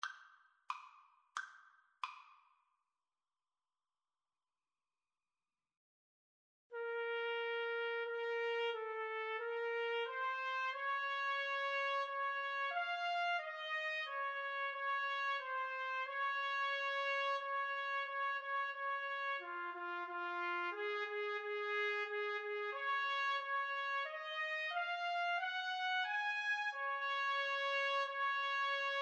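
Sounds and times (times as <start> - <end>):
trumpet playing a pavane: 6.8 - 29.0.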